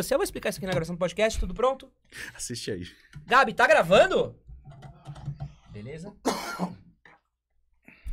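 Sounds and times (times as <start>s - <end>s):
speech: 0.0s - 4.4s, 5.8s - 6.8s
person coughing: 6.2s - 7.0s.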